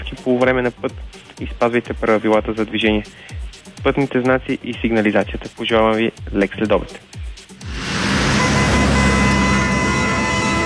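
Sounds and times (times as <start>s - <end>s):
speech: 0.2s - 7.2s
faint tonal hums in a radio jingle: 7.6s - 10.6s
road traffic roar of passing cars in a radio traffic report jingle: 7.6s - 10.6s.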